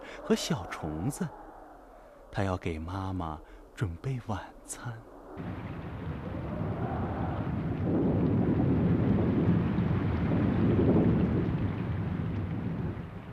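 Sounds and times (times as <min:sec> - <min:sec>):
low rumbling wash: 0:00.0 - 0:13.3
speech: 0:00.3 - 0:01.4, 0:02.4 - 0:06.4
heavy rain pouring: 0:05.4 - 0:13.3.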